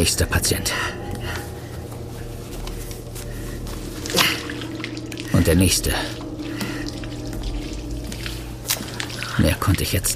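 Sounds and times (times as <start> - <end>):
speech: 0.0 - 1.0, 5.4 - 6.2, 9.4 - 10.1
steady low hum: 0.0 - 10.1
liquid solution splashing onto the floor: 4.0 - 9.9.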